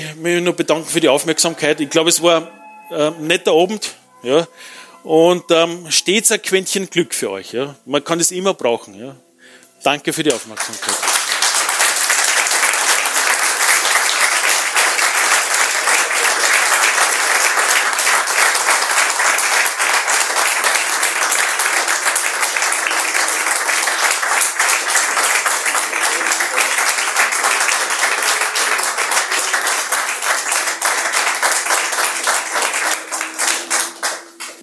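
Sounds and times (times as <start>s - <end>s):
speech: 0.1s - 11.1s
large crowd audience applause after a talk: 10.5s - 34.6s.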